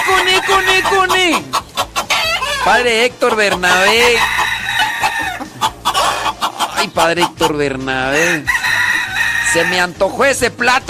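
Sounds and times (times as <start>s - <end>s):
rooster crowing in a henhouse: 0.0s - 1.1s, 2.1s - 2.8s, 3.6s - 6.4s, 8.2s - 9.8s
chickens clucking in a henhouse: 0.0s - 10.2s
speech: 2.7s - 4.4s, 6.8s - 8.6s, 9.5s - 10.8s.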